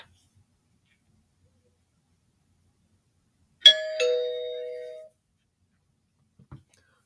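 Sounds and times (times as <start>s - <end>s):
two-tone doorbell chime: 3.6s - 5.1s.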